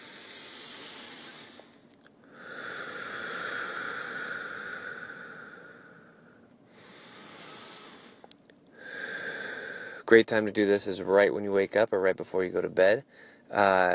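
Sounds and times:
slow deep breaths: 0.0 - 10.2, 13.0 - 13.5
speech: 10.1 - 13.9.

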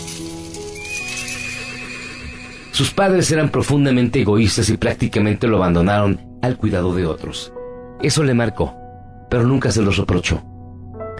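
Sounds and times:
horse whinnying: 0.8 - 3.5
speech: 2.8 - 10.5.

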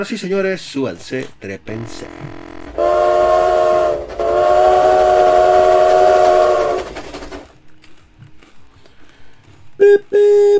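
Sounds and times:
speech: 0.0 - 2.9
train rumbling: 0.4 - 7.8
steam train whistle blasts: 1.8 - 7.3, 9.8 - 10.5.

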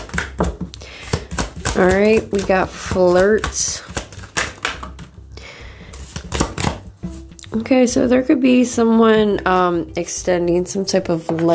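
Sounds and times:
deck of playing cards being shuffled: 0.0 - 5.3, 5.9 - 7.4
speech: 1.8 - 3.8, 7.6 - 11.5.

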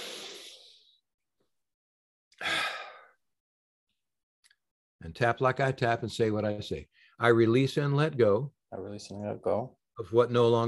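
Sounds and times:
big deep breath in: 0.0 - 1.0, 2.4 - 3.2
speech: 5.0 - 10.6.

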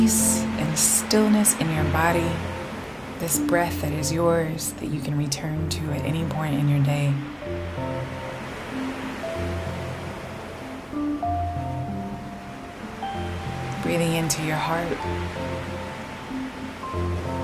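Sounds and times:
speech: 0.0 - 2.6, 3.2 - 8.2, 13.9 - 15.7
ocean waves: 0.0 - 17.4
soft sustained musical tones: 0.0 - 17.4.

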